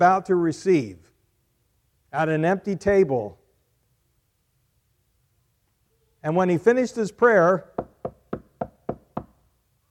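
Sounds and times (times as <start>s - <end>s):
speech: 0.0s - 1.1s, 2.1s - 3.4s, 6.2s - 7.9s
knocking on a wooden door: 7.8s - 9.4s.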